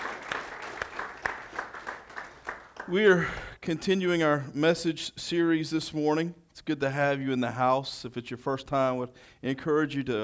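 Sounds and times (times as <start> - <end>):
congregation clapping hands in praise during a church service: 0.0 - 3.4
speech: 2.9 - 10.2.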